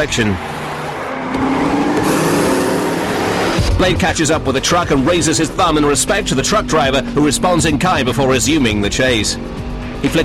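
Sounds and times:
speech: 0.0 - 0.5, 3.8 - 10.2
supercharged racing car engine roaring while speeding into oncoming traffic: 0.0 - 10.2.

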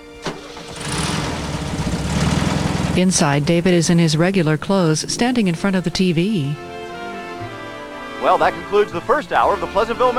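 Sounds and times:
truck engine starting: 0.0 - 6.6
speech: 3.0 - 6.7, 8.2 - 10.1.

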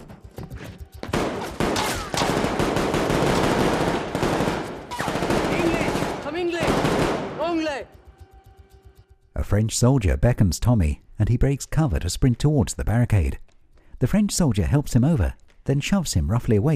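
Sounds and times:
heavy gunfire from a sandbag barricade: 1.1 - 7.4
speech: 9.5 - 16.7.

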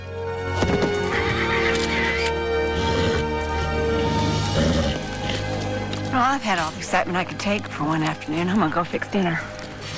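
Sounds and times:
horse rearing with a rider and whinnying shrilly: 0.6 - 5.5
speech: 6.2 - 9.5.

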